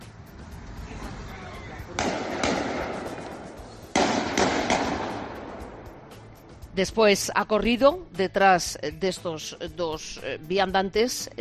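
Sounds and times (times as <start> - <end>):
hiss: 0.0 - 11.3
Kalashnikov rifle gunshots from a shared video: 2.0 - 5.8
speech: 6.8 - 11.3.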